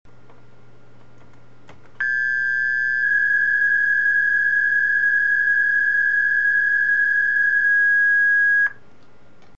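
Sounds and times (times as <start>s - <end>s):
PSK125 digital radio data signal: 2.0s - 8.8s.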